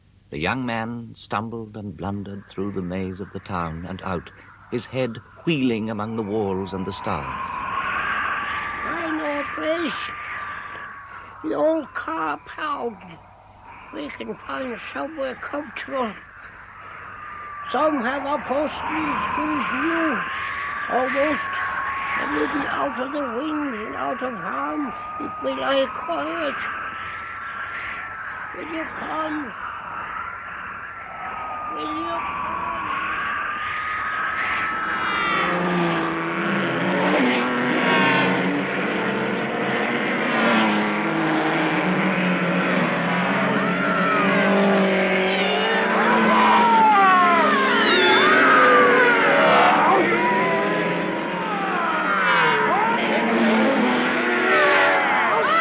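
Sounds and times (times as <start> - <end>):
wind: 0.0 - 55.5
traffic: 1.3 - 55.5
siren: 1.7 - 55.5
people chanting: 2.5 - 35.6, 42.7 - 55.5.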